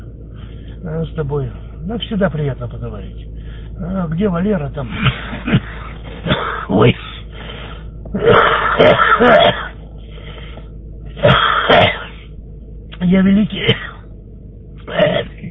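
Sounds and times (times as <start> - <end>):
speech: 0.8 - 5.7, 6.3 - 7.0, 8.1 - 9.7, 13.1 - 13.8
smoker's rough raspy tobacco cough: 5.0 - 7.0, 8.2 - 9.8, 11.2 - 12.2, 13.6 - 14.0, 14.9 - 15.4.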